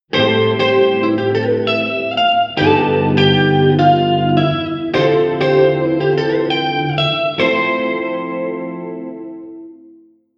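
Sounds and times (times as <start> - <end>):
chord progression Am7 G7b13 Dm79 F7M: 0.1 - 10.1.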